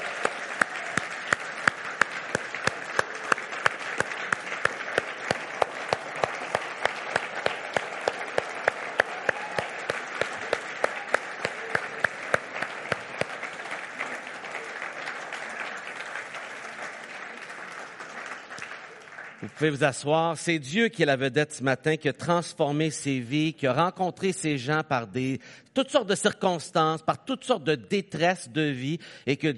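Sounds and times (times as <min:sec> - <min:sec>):
church congregation applauding in a standing ovation: 0:00.0 - 0:20.6
speech: 0:19.6 - 0:29.5.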